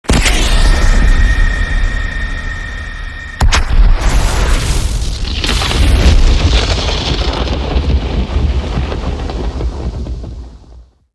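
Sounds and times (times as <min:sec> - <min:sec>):
cinematic death explosion: 0:00.0 - 0:10.0.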